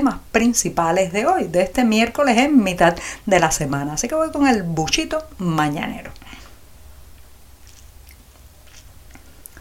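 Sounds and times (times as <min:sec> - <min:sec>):
speech: 0:00.0 - 0:06.2
low steady hum: 0:00.0 - 0:09.6
slurping and swallowing hot coffee: 0:07.6 - 0:09.6.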